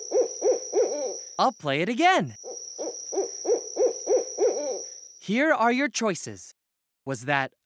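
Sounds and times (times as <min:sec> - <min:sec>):
owl hooting: 0:00.0 - 0:01.6, 0:02.3 - 0:05.2
speech: 0:01.4 - 0:02.4, 0:05.3 - 0:07.6.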